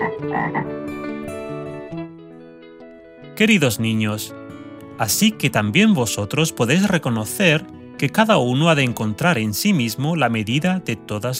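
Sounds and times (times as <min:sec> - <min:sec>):
frog croaking: 0:00.0 - 0:00.8
speech: 0:00.2 - 0:01.1, 0:03.4 - 0:04.4, 0:05.0 - 0:11.3.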